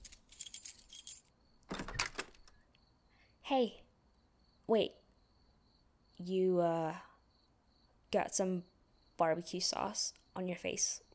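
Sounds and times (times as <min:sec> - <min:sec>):
keys jangling: 0:00.0 - 0:02.5
speech: 0:03.5 - 0:03.8, 0:04.7 - 0:05.0, 0:06.2 - 0:07.1, 0:08.1 - 0:11.1.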